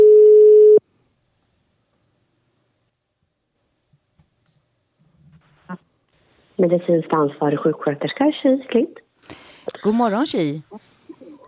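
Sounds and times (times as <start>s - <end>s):
telephone ringback tone while calling a nurse: 0.0s - 0.8s
speech: 6.6s - 9.0s, 9.8s - 10.9s.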